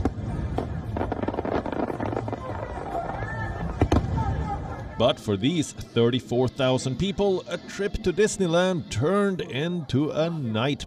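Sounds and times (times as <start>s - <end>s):
fireworks exploding: 0.0s - 4.7s
crowd noise: 0.0s - 10.8s
speech: 5.0s - 10.8s.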